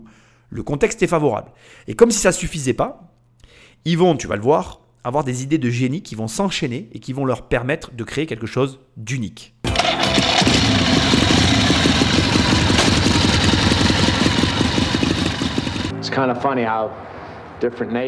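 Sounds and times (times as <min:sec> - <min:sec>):
speech: 0:00.0 - 0:09.6, 0:16.0 - 0:18.0
motorcycle engine running: 0:09.7 - 0:15.9.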